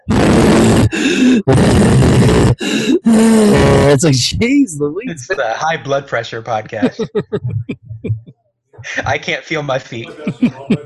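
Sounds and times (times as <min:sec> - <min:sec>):
voice imitating heavy strained breathing and grunting: 0:00.0 - 0:03.8
speech: 0:01.1 - 0:08.2, 0:08.8 - 0:10.8
laughter: 0:05.0 - 0:10.8.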